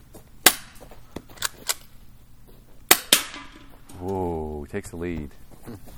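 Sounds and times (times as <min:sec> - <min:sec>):
faint noise: 0:00.0 - 0:05.9
airsoft gun shots during a shooting contest: 0:00.4 - 0:00.8, 0:02.9 - 0:03.7
speech: 0:04.0 - 0:05.9.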